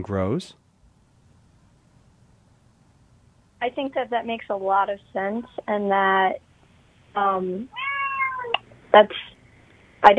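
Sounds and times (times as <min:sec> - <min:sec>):
speech: 0:00.0 - 0:00.6, 0:03.6 - 0:06.5, 0:07.1 - 0:07.9, 0:08.9 - 0:09.2
cat meowing: 0:07.7 - 0:08.6.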